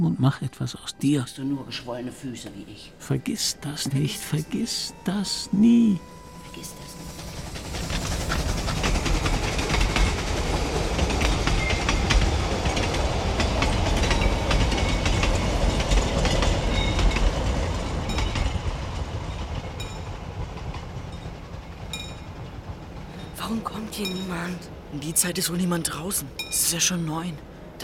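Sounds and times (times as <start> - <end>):
speech: 0.0 - 7.3, 25.0 - 27.8
train rumbling past on rails: 0.8 - 27.8
rhythmic clacking of train wheels: 6.4 - 26.8.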